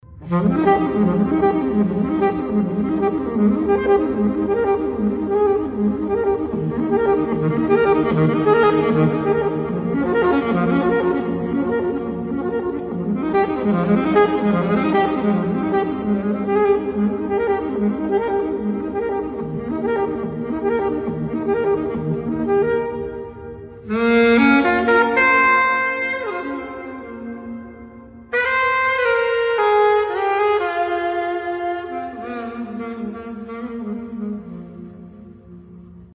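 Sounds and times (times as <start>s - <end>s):
saxophone with echo: 0.0s - 36.1s.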